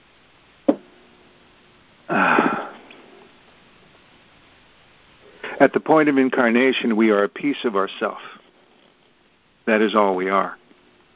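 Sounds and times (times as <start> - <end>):
sharp cough: 2.1 - 2.8
speech: 5.6 - 8.4, 9.7 - 10.6.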